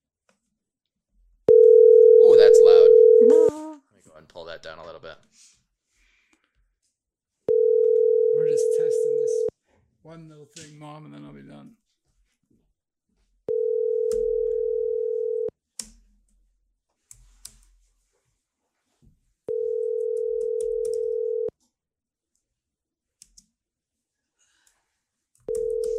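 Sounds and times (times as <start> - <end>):
ringback tone of an outgoing telephone call: 1.5 - 3.5, 7.5 - 9.5, 13.5 - 15.5, 19.5 - 21.5, 25.5 - 25.9
speech: 4.6 - 5.6, 8.6 - 11.8.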